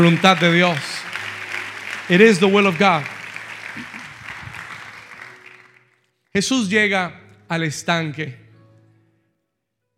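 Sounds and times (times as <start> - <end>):
speech: 0.0 - 1.1, 2.1 - 3.1, 6.3 - 8.4
audience clapping: 0.0 - 6.1.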